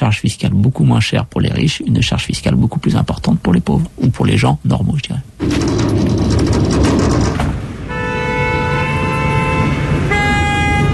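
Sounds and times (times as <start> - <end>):
rumbling traffic noise: 0.0 - 10.9
speech: 0.1 - 5.9
car horn honking: 7.8 - 10.9.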